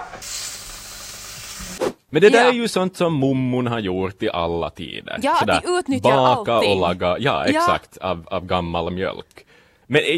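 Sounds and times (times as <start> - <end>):
small Swedish pancakes frying in a pan: 0.0 - 1.8
speech: 1.8 - 10.1.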